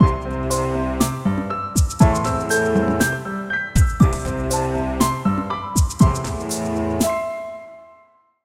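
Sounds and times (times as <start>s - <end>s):
modern piano groove audio logo: 0.0s - 8.2s.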